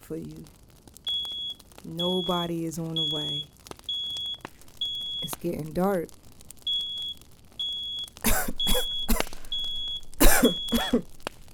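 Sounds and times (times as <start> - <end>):
speech: 0.1 - 0.6, 1.8 - 3.5, 5.2 - 6.2, 10.4 - 11.2
high electronic beep in short pulses: 1.1 - 5.4, 6.7 - 10.8
harsh coughing: 8.2 - 9.4, 10.2 - 11.1.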